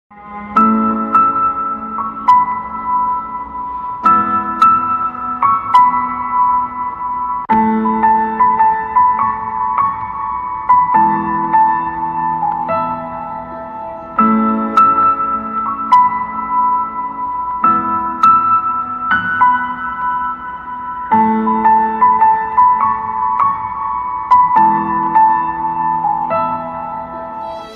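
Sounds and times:
piano instrumental ringtone: 0.2s - 27.7s.

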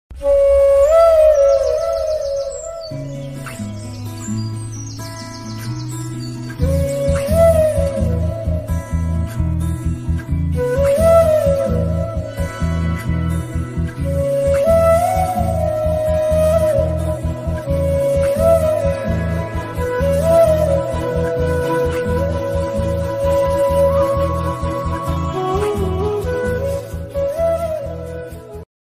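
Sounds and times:
flute music ringtone: 0.2s - 28.7s.

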